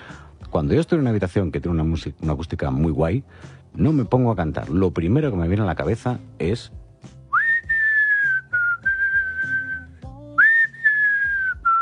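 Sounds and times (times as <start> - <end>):
speech: 0.6 - 6.8
person whistling a song melody in a resonant room: 7.3 - 11.8.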